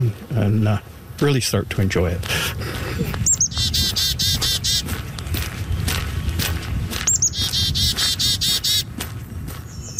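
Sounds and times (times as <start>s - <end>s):
speech: 0.0s - 3.1s
footsteps or movement: 2.2s - 9.9s
bright rapid bird song with high trilling phrases: 3.2s - 8.9s, 9.6s - 9.9s.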